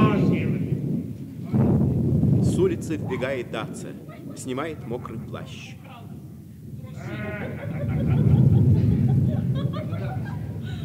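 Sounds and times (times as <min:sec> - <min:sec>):
deep rolling rumble of thunder: 0:00.0 - 0:10.8
speech: 0:02.7 - 0:05.8
laughter: 0:03.0 - 0:06.1, 0:06.8 - 0:10.8
brief high bleating-like cry: 0:06.9 - 0:07.7.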